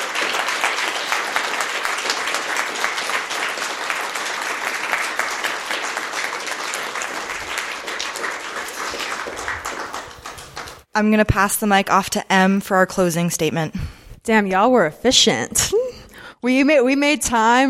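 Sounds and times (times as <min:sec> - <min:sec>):
large audience applauding for candidates: 0:00.0 - 0:10.9
speech: 0:11.0 - 0:15.8, 0:16.4 - 0:17.6.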